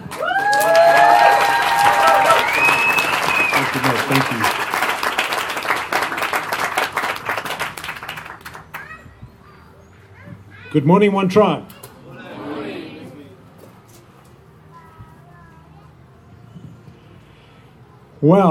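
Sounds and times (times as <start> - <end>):
voices cheering and whooping: 0.0 - 4.4
congregation applauding: 0.0 - 9.0
speech: 10.8 - 11.8, 18.2 - 18.4.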